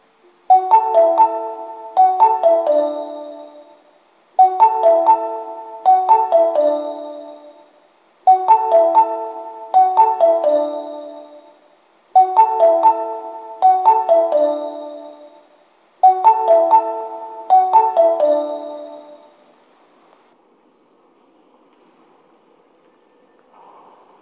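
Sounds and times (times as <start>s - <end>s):
electronic station-platform arrival melody: 0.5s - 19.5s.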